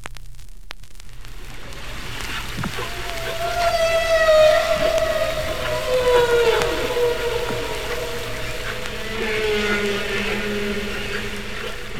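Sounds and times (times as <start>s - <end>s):
broad underwater background noise: 0.0s - 11.9s
humpback whale song recorded by hydrophone: 1.5s - 11.9s.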